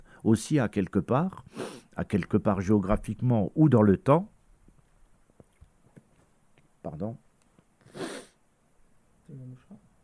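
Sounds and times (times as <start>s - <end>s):
speech: 0.2s - 4.3s, 6.8s - 7.2s
stifled sneeze: 7.9s - 8.4s.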